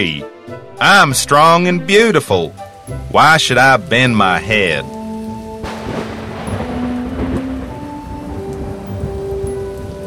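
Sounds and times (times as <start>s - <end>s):
speech: 0.0s - 5.0s
steady dense rain hissing in a thunderstorm: 2.2s - 10.0s
low thunder rumbling: 2.6s - 10.0s.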